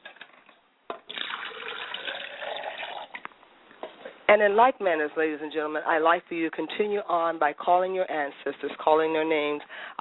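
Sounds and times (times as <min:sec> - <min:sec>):
water running from a tap while someone washes their face: 0:01.1 - 0:03.2
speech: 0:04.3 - 0:10.0.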